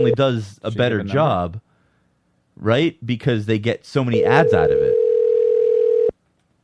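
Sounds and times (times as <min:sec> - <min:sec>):
speech: 0:00.0 - 0:01.7, 0:02.6 - 0:04.9
electronic phone call ring tone: 0:04.2 - 0:06.1.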